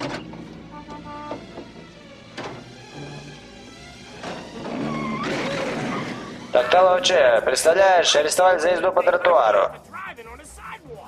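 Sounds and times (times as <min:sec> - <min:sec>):
car door opening: 0:00.0 - 0:06.5
mechanical clunks and rattles: 0:00.0 - 0:06.9
speech: 0:06.8 - 0:09.9.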